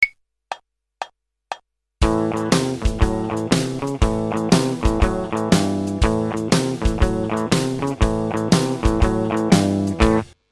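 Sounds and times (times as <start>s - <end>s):
spread riff blues rhythm: 2.0s - 10.3s.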